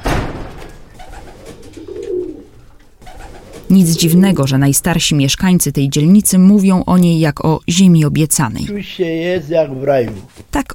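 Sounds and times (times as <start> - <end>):
wings fluttering: 0.4 - 4.2
pigeons cooing: 0.7 - 4.4
speech: 3.7 - 10.7.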